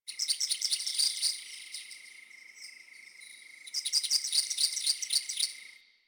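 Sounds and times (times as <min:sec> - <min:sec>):
night insects ambience: 0:00.1 - 0:06.0.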